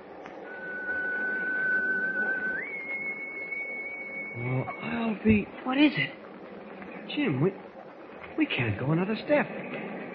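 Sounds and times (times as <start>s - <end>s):
whistle blowing in fog: 0.0s - 5.4s
dense rumbling background: 0.0s - 10.1s
speech: 4.4s - 6.2s, 7.1s - 7.6s, 8.4s - 9.6s.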